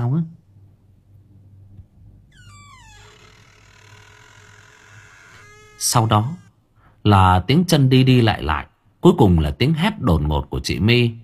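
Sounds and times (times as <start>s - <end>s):
door creaking open in the next room: 2.3s - 6.6s
speech: 5.8s - 6.4s, 7.0s - 11.2s.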